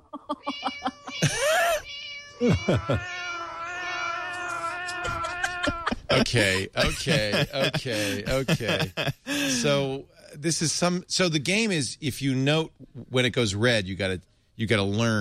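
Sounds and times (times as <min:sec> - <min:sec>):
laughter: 0:00.0 - 0:01.8, 0:02.4 - 0:03.0, 0:04.4 - 0:09.8
speech: 0:00.3 - 0:01.3, 0:02.4 - 0:03.2, 0:06.1 - 0:15.2
several cats meowing and yowling: 0:00.4 - 0:06.2.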